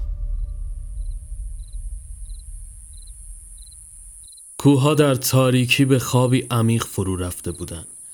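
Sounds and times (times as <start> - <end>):
low rumble: 0.0 - 4.4
crickets chirping at night: 0.0 - 8.1
high insect drone: 0.1 - 8.1
speech: 4.6 - 8.0.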